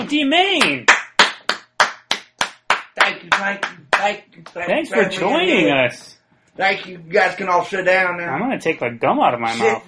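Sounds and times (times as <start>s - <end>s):
speech: 0.0s - 0.9s, 3.2s - 9.8s
audience applause with rhythmic clapping: 0.5s - 4.6s.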